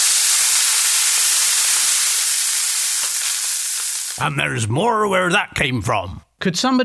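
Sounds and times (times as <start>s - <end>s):
steam escaping under pressure with a loud continuous hiss: 0.0s - 4.2s
speech: 4.2s - 6.8s.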